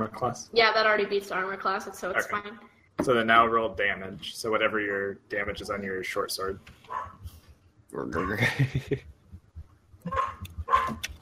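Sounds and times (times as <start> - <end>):
speech: 0.0 - 7.2, 7.9 - 9.1, 10.0 - 10.4
dogs barking in a room: 6.9 - 7.2, 8.2 - 8.6, 10.1 - 11.0
laughter: 8.2 - 9.0.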